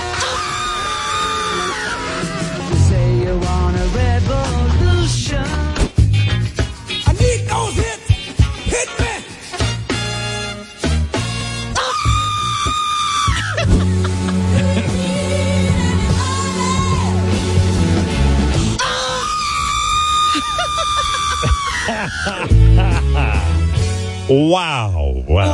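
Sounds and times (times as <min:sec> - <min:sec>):
woman's shrill sustained scream: 0:00.2 - 0:02.2, 0:11.7 - 0:13.8, 0:18.8 - 0:22.4
upbeat songs with a thumping bass beat: 0:01.7 - 0:18.9, 0:21.7 - 0:25.5
laughter: 0:13.3 - 0:15.7, 0:20.2 - 0:23.8
speech: 0:24.5 - 0:25.5.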